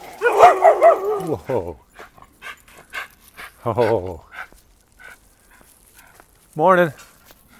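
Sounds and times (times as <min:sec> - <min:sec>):
big dog barking: 0:00.0 - 0:01.8
speech: 0:00.5 - 0:01.9, 0:03.6 - 0:04.3, 0:06.6 - 0:07.1.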